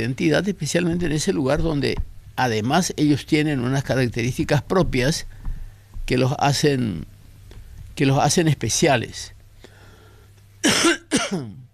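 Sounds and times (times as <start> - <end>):
speech: 0.0 - 5.4, 6.1 - 7.1, 8.0 - 9.4, 10.6 - 11.6
person with a persistent cough coughing harshly: 10.6 - 11.7.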